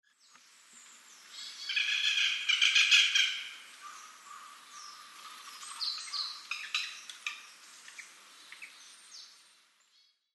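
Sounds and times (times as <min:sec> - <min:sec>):
Japanese Green Woodpecker calling in Nasushiobara: 0:01.5 - 0:08.8.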